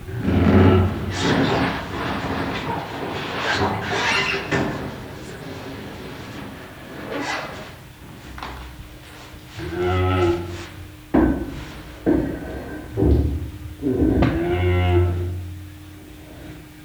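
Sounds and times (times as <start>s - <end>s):
Indian rhinoceros snorting, grunting, squeaking and low calls: 0.0s - 16.8s.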